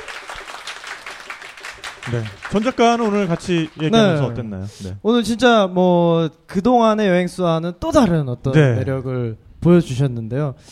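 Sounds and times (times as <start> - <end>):
audience applauding at a talk: 0.0 - 4.4
speech: 2.1 - 10.7.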